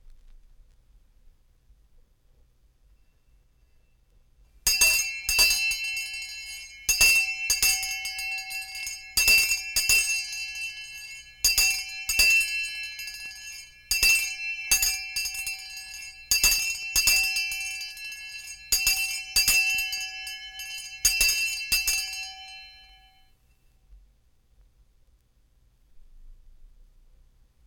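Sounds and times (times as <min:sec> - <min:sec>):
school bell or town crier bell ringing: 0:04.7 - 0:23.3.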